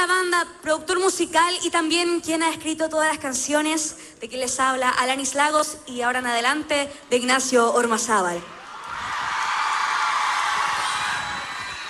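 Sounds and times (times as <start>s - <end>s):
speech: 0.2s - 8.6s
large audience at a live band performance shouting and whooping: 8.6s - 11.8s.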